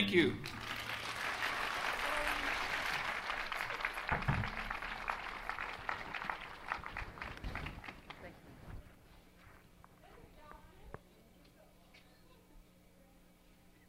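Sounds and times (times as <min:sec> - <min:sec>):
speech: 0:00.1 - 0:00.6
audience applauding two performers: 0:00.2 - 0:08.5.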